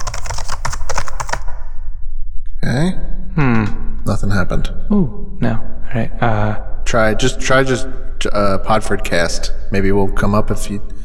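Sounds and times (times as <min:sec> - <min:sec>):
typing on a computer keyboard: 0:00.0 - 0:01.4
speech: 0:02.6 - 0:10.9.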